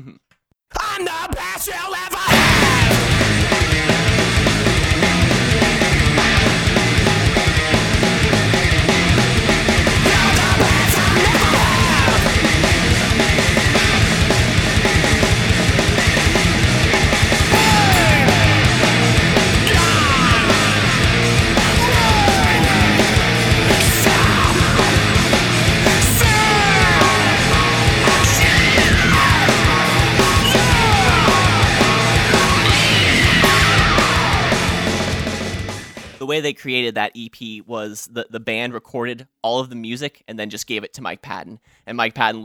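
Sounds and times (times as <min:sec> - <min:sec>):
harsh yelled vocals: 0:00.7 - 0:36.5
speech: 0:01.0 - 0:02.3, 0:36.4 - 0:42.4
distorted guitars: 0:02.2 - 0:36.2
loud dense heavy metal song: 0:02.2 - 0:36.2
pounding drums: 0:02.3 - 0:36.2.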